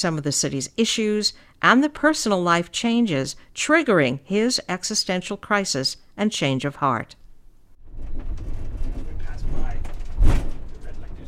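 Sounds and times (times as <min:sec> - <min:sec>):
speech: 0:00.0 - 0:07.2
steady low city bus engine rumble: 0:07.9 - 0:11.2.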